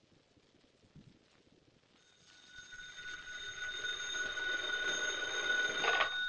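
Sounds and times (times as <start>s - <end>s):
telephone bell ringing: 2.0s - 6.2s.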